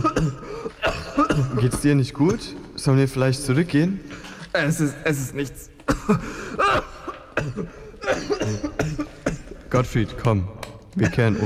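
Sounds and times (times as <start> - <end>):
strained raspy breaths: 0.0 - 0.8, 4.0 - 4.6, 6.0 - 8.3
man's harsh coughing fit: 0.0 - 2.5, 5.9 - 9.7, 11.0 - 11.4
speech: 0.2 - 0.4, 1.2 - 6.9, 7.5 - 7.8, 9.7 - 11.4.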